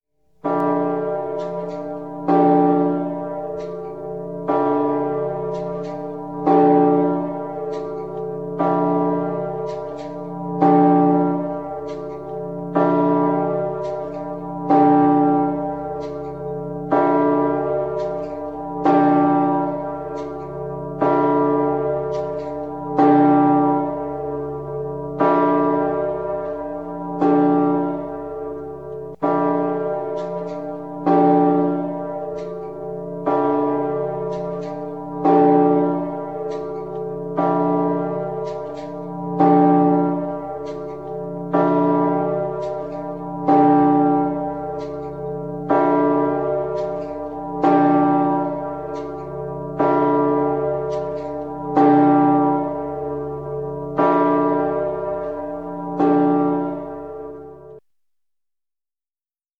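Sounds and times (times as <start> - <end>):
full peal of bells of Messina Cathedral in Sicily: 0.2 - 57.9.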